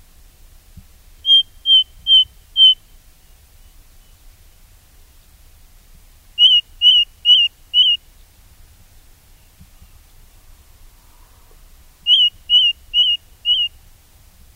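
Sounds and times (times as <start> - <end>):
ring ouzel clear piping whistled notes: 1.2 - 2.8, 6.4 - 8.0, 12.1 - 13.8.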